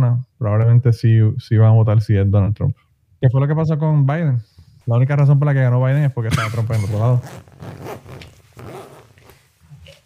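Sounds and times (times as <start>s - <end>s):
speech: 0.8s - 8.2s
jacket zipper being unzipped: 6.7s - 10.0s.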